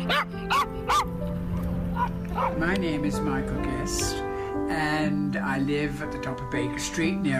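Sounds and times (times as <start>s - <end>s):
dog barking: 0.1s - 2.6s
speech: 2.6s - 7.3s.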